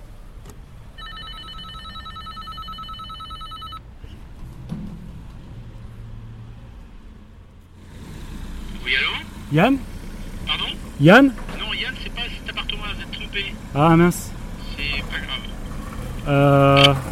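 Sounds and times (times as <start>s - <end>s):
apartment door intercom ringing: 1.0s - 3.8s
speech: 8.9s - 9.9s, 11.0s - 11.4s, 13.4s - 14.2s, 16.3s - 17.1s.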